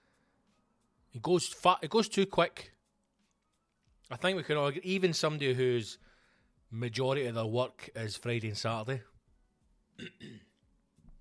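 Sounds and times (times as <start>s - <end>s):
speech: 1.1s - 2.8s, 4.1s - 6.1s, 6.7s - 9.1s, 10.0s - 10.5s
rasping throat-clearing coughs: 10.0s - 10.6s.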